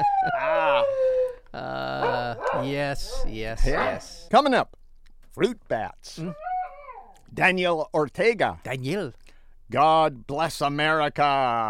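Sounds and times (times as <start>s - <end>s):
dog howling: 0.0s - 3.2s, 6.2s - 7.2s
speech: 1.6s - 6.4s, 7.3s - 11.6s.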